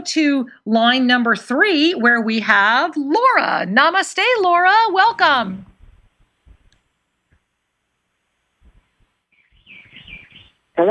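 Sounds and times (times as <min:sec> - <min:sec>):
speech: 0:00.0 - 0:05.7
soft low thumps: 0:05.6 - 0:07.4, 0:08.6 - 0:09.7
birds chirping: 0:09.2 - 0:10.8.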